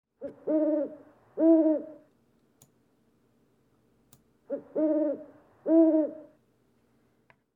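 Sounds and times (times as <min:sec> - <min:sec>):
owl hooting: 0:00.2 - 0:02.1, 0:04.5 - 0:06.4.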